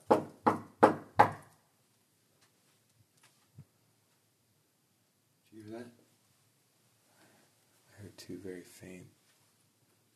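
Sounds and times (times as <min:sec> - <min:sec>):
knocking on a door: 0:00.0 - 0:01.4
speech: 0:08.2 - 0:09.2.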